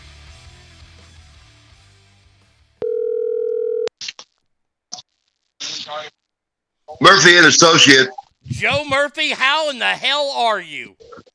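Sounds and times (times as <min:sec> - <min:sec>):
ringback tone on an outgoing phone call: 0:02.8 - 0:03.9
speech: 0:05.9 - 0:06.2, 0:06.9 - 0:11.3
short bursts of voice: 0:08.5 - 0:11.0.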